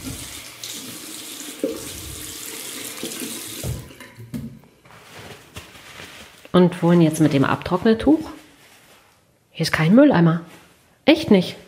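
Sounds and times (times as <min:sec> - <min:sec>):
tap water running over hands at a washroom sink: 0:00.0 - 0:04.0
speech: 0:06.5 - 0:08.4, 0:09.6 - 0:11.6.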